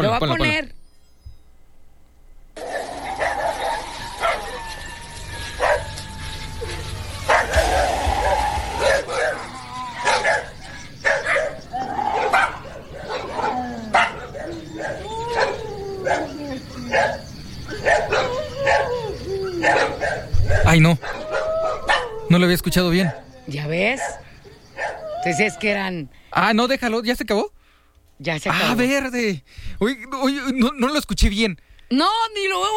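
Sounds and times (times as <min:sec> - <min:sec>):
speech: 0:00.1 - 0:00.7, 0:22.4 - 0:24.2, 0:25.2 - 0:27.5, 0:28.2 - 0:32.7
dogs barking at night: 0:02.6 - 0:25.8.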